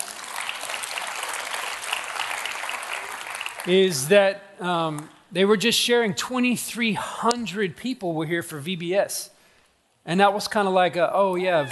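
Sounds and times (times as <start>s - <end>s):
large audience applauding in a church: 0.0s - 3.7s
speech: 3.6s - 9.4s, 10.0s - 11.7s.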